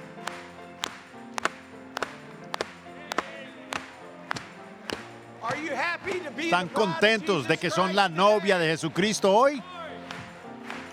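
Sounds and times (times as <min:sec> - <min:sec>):
group clapping in a steady rhythmic beat: 0:00.0 - 0:07.0, 0:10.0 - 0:10.9
speech: 0:05.6 - 0:09.8.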